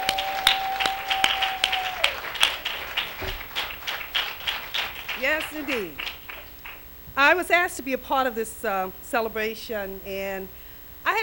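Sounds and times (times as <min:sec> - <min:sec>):
audience applause: 0:00.0 - 0:06.9
speech: 0:05.5 - 0:06.1, 0:07.2 - 0:11.2.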